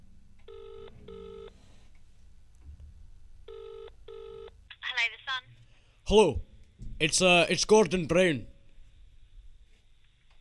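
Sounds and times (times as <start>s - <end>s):
telephone line ringing in British double-ring pattern: 0.5s - 1.5s, 3.5s - 4.5s
speech: 6.1s - 8.5s.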